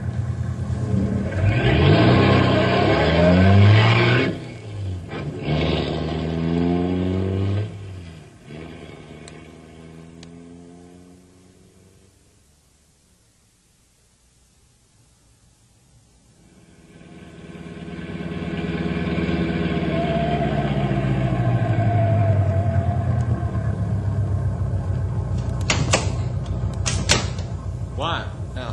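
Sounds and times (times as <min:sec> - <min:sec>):
car engine roaring and revving during road chase: 0:00.0 - 0:13.0, 0:16.1 - 0:28.7
rattling clatter: 0:25.3 - 0:27.7.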